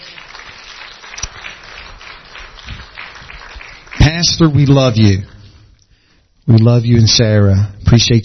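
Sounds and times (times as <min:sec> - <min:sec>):
audience clapping hands in praise: 0:00.0 - 0:05.2
speech: 0:04.1 - 0:05.3, 0:06.5 - 0:08.2.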